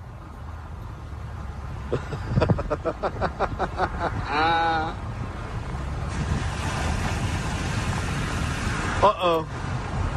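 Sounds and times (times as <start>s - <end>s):
motorboats including a lifeguard boat and a sheriff boat roaring across the water: 1.3s - 10.1s
laughter: 1.9s - 4.6s
speech: 1.9s - 5.0s, 9.0s - 9.6s.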